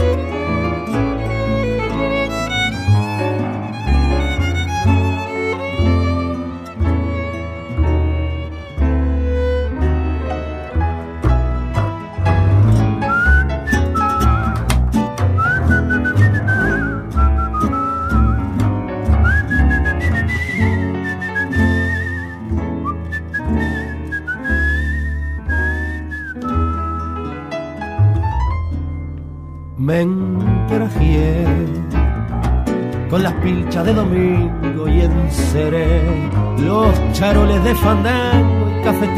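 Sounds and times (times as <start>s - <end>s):
instrumental accompaniment with a strong beat: 0.0s - 29.8s, 30.7s - 39.1s
person whistling a song melody: 13.0s - 27.5s.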